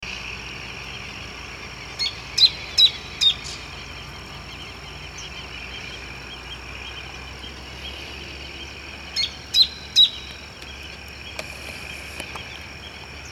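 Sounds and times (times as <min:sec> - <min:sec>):
Phacellodomus striaticollis calling: 0:01.0 - 0:13.3.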